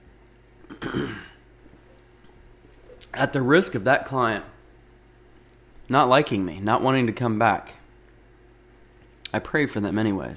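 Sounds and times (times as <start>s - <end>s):
throat clearing: 0.6s - 1.4s
speech: 0.9s - 1.3s, 3.1s - 4.5s, 5.9s - 7.8s, 9.3s - 10.3s.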